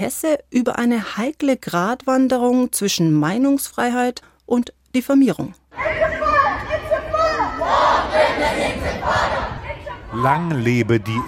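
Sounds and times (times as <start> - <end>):
speech: 0.0 - 6.1, 10.2 - 11.2
large protest crowd chanting slogans in unison: 5.8 - 10.4.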